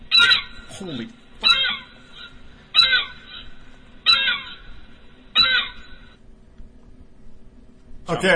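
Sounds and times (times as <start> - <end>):
seagull eating garbage calling: 0.0 - 6.2
speech: 0.2 - 1.2, 8.1 - 8.3.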